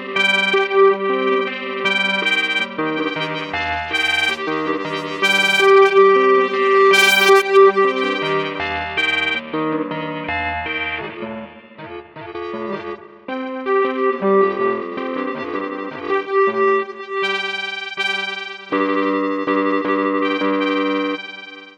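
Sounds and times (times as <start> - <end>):
guitar ringing: 0.2 - 21.7.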